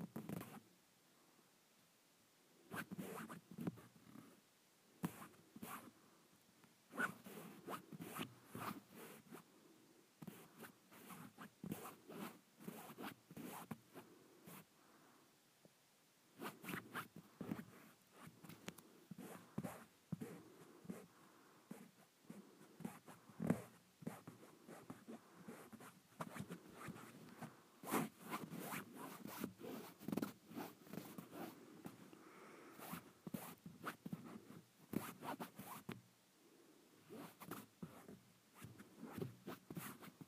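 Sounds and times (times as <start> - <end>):
fabric scratched and rubbed in crisp rasping bursts: 2.7 - 4.3, 5.0 - 5.9, 6.9 - 9.4, 10.2 - 14.7, 16.4 - 21.1, 21.7 - 32.0, 32.8 - 36.0, 37.0 - 40.2.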